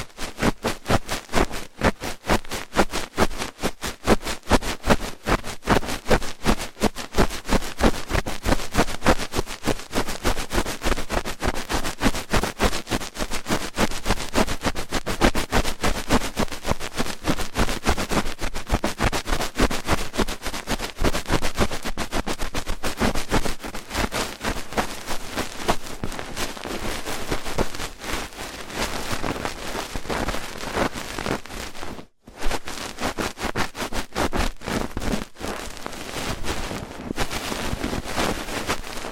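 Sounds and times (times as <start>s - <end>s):
scratchy ear cleaning with crackles and rustles: 0.0s - 39.1s.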